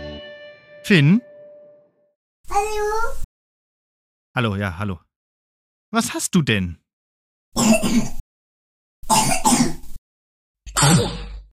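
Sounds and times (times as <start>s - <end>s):
speech: 0.9s - 1.3s, 4.4s - 5.1s, 5.9s - 6.8s, 7.6s - 8.2s
person with a cold clearing throat: 7.6s - 8.2s, 9.1s - 9.8s, 10.7s - 11.5s
person with a cold coughing: 7.6s - 8.2s, 9.1s - 9.8s, 10.7s - 11.4s.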